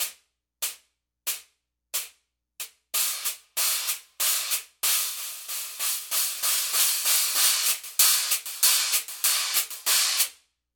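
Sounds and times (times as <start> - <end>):
Paiste PST X Swiss hi-hat cymbals: 2.0 - 10.4.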